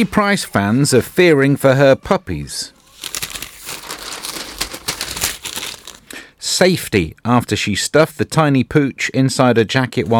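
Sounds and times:
speech: 0:00.0 - 0:02.8, 0:06.6 - 0:10.1
newspaper page being turned: 0:02.8 - 0:06.4.

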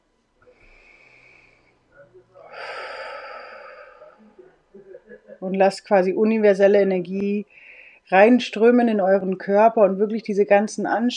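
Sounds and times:
deep breathing in and out: 0:00.4 - 0:05.4, 0:07.5 - 0:08.1
speech: 0:04.8 - 0:11.1.

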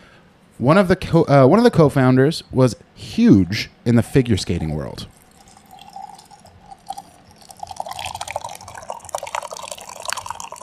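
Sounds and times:
speech: 0:00.6 - 0:05.2
canned drink pouring and dripping: 0:05.1 - 0:10.6.

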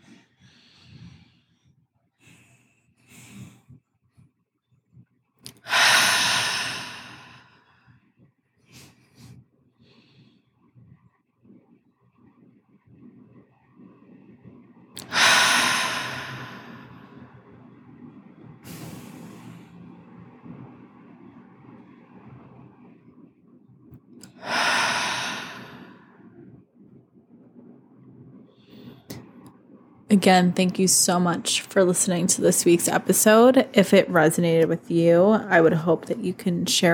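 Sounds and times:
deep breaths in through the nose, out through the mouth: 0:00.0 - 0:03.8, 0:05.5 - 0:11.1, 0:15.0 - 0:17.5, 0:24.2 - 0:27.3
speech: 0:30.2 - 0:36.9.

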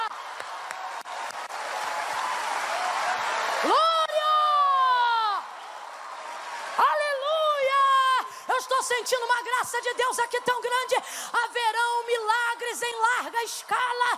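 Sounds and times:
audience applauding: 0:00.0 - 0:07.0
audience voices shouting praises: 0:00.0 - 0:09.5
speech: 0:09.0 - 0:14.1.

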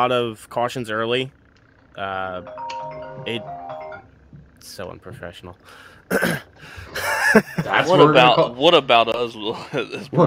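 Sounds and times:
speech: 0:00.0 - 0:01.4, 0:02.0 - 0:03.6, 0:04.6 - 0:10.2
phone ringtone with bright electronic melody and chiming notes: 0:02.4 - 0:04.2
laughter: 0:06.2 - 0:08.6, 0:09.5 - 0:10.2.

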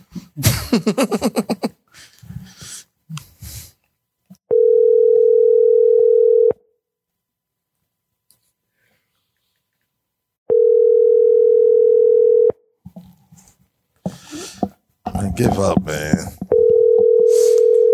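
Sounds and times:
laughter: 0:00.1 - 0:02.1
speech: 0:00.4 - 0:01.6, 0:15.5 - 0:16.2
phone ringback tone of an unanswered call: 0:04.5 - 0:06.6, 0:10.5 - 0:12.5, 0:16.5 - 0:17.9.

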